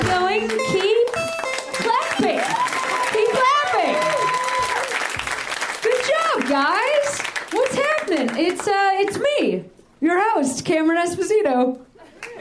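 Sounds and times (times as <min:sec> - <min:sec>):
speech: 0:00.4 - 0:00.7, 0:10.4 - 0:11.9
crowd applauding: 0:00.4 - 0:09.2
crowd cheering and whooping: 0:01.6 - 0:05.3.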